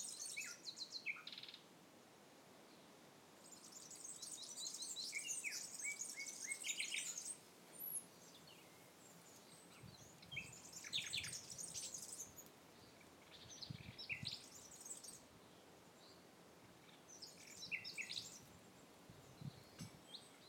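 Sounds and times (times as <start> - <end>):
common nightingale singing varied phrases: 0.0 - 1.7, 3.4 - 15.3, 16.8 - 18.6.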